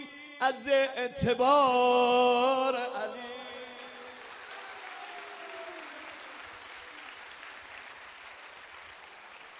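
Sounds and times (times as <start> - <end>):
speech: 0.5 - 3.3
crowd clapping: 3.2 - 9.5.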